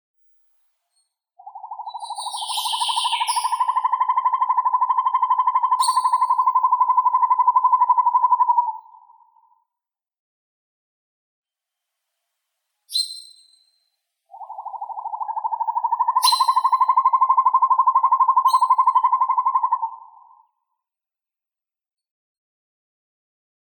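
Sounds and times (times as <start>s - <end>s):
northern hawk owl Surnia ulula calling: 1.4s - 9.5s, 14.3s - 20.4s.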